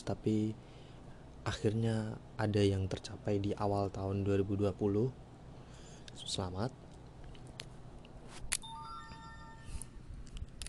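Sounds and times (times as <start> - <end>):
low noise: 0.0 - 10.6
speech: 0.1 - 0.7, 1.4 - 5.3, 6.2 - 6.8
short electronic phone alert chime: 8.6 - 9.9.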